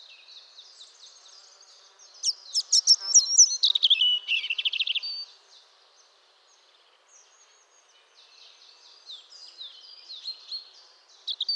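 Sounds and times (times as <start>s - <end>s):
European robin Erithacus rubecula singing: 2.2s - 5.2s.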